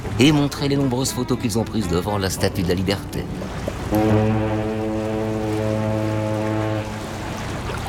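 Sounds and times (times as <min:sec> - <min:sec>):
speech: 0:00.2 - 0:04.4
deep boat horn sounding at departure: 0:03.4 - 0:07.7.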